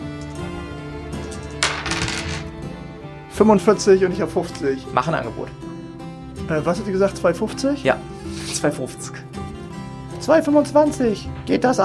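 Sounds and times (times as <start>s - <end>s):
music: 0.0s - 11.8s
dice clattering across a hard surface: 1.2s - 2.5s
speech: 3.4s - 5.7s, 6.5s - 9.3s, 10.3s - 11.8s.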